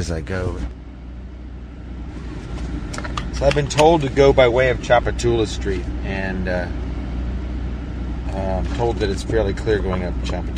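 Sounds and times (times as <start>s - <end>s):
speech: 0.0s - 0.8s, 3.4s - 6.8s, 8.3s - 10.5s
faint traffic hum from outside: 0.0s - 10.5s
steady low rumble inside a car on a city street: 0.0s - 10.5s.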